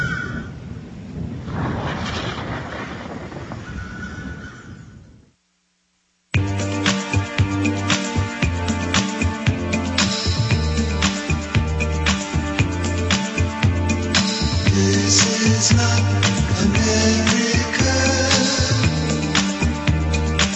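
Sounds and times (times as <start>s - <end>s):
low rolling thunder of a coming storm: 0.4s - 5.3s
music: 6.3s - 20.5s.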